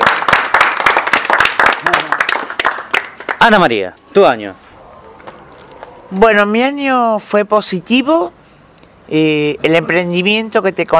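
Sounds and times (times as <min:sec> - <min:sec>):
applause from a small gathering: 0:00.0 - 0:03.7
speech: 0:03.4 - 0:04.6, 0:06.1 - 0:08.4, 0:09.1 - 0:10.9.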